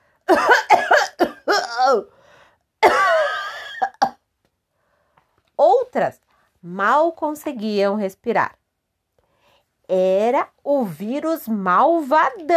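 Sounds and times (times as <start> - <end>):
person acting out a fit of throaty coughing: 0.3 - 2.1, 2.8 - 4.2
speech: 1.9 - 2.2, 6.0 - 8.6, 9.9 - 12.5.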